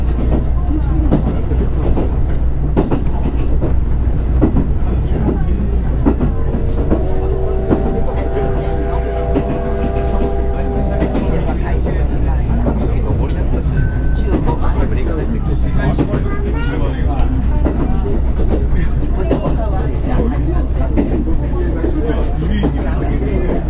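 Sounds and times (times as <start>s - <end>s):
murmured voices: 0.0s - 23.6s
steady low rumble inside a moving Oha 35 series passenger car: 0.0s - 23.6s
brief tonal whine: 6.0s - 12.8s.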